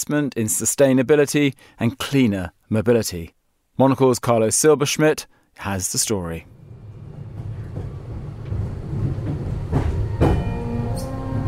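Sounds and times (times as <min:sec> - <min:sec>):
speech: 0:00.0 - 0:06.6
new bendy tram rumbling along its rails in Zurich Switzerland: 0:06.4 - 0:11.4
tram screeching metallic tones: 0:10.4 - 0:11.4.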